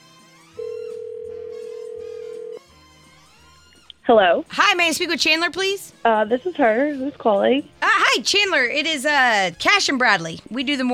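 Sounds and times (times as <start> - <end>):
soft music: 0.0 - 10.9
telephone ringback tone as a radio morning show places a call: 0.6 - 2.6
speech: 4.1 - 10.9.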